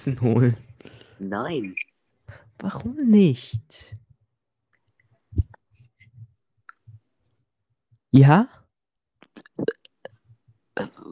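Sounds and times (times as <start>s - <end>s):
speech: 0.0s - 1.9s, 2.6s - 4.0s, 8.1s - 8.6s, 10.8s - 11.1s
low rumbling guttural burp: 9.2s - 11.1s.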